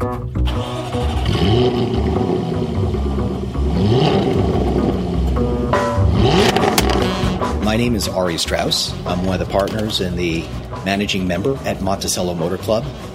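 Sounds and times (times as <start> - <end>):
2013 Jaguar F-Type convertible engine revving as the car pulls away and drives: 0.4 - 10.8
speech: 7.7 - 13.1.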